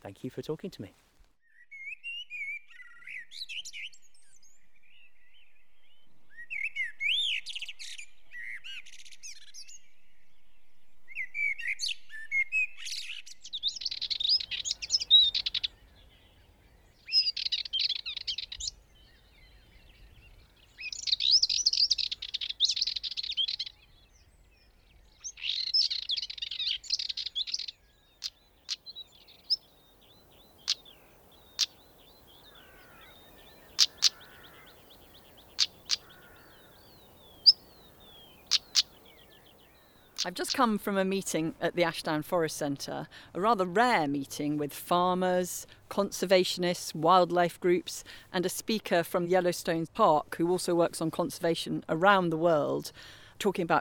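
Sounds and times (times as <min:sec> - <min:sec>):
speech: 0:00.0 - 0:01.2, 0:40.6 - 0:53.8
blackbird singing: 0:01.4 - 0:10.2, 0:11.1 - 0:40.7
stonechat clicking calls: 0:13.6 - 0:15.7, 0:17.0 - 0:18.8, 0:20.8 - 0:23.8, 0:25.2 - 0:40.7.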